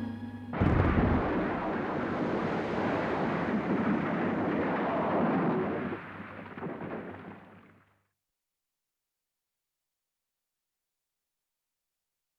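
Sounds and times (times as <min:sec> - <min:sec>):
light aircraft crash: 0:00.6 - 0:07.8.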